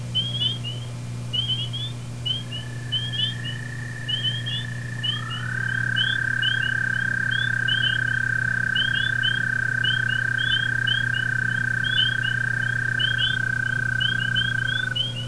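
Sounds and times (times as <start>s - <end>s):
Eastern American Toad calling: 0.0s - 15.2s.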